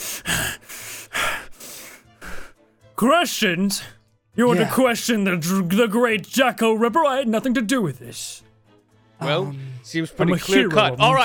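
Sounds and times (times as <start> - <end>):
heavy panting breaths: 0.0 - 2.8
speech: 3.0 - 8.5, 9.2 - 11.2.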